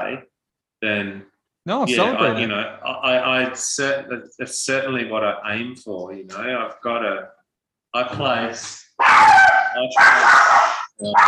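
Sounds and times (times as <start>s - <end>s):
speech: 0.1s - 11.2s
dogs barking excitedly: 9.0s - 11.2s.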